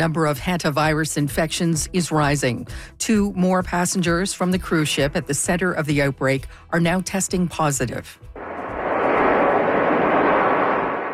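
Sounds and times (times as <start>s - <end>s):
speech: 0.0s - 8.3s
jet airplane landing in Omaha Nebraska: 8.4s - 11.1s.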